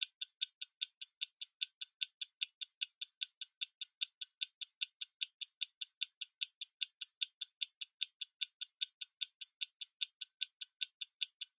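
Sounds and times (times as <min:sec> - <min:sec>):
mechanical stopwatch hand ticking: 0:00.0 - 0:11.5.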